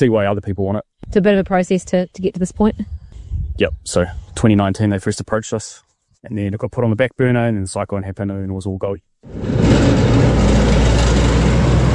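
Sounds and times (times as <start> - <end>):
speech: 0.0 - 3.0, 3.6 - 10.4
heavy truck engine drone crossing a temporary metal Bailey bridge: 9.3 - 11.9
temporary metal Bailey bridge rattling under trucks: 9.3 - 11.9.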